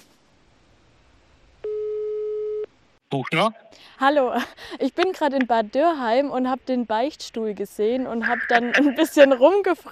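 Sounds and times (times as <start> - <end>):
telephone ringing tone while calling a carpenter: 1.6 - 2.6
speech: 3.1 - 9.8.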